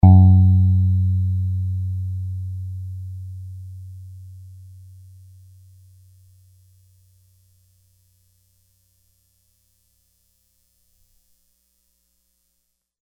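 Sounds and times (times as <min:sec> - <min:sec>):
piano F note: 0:00.0 - 0:05.2.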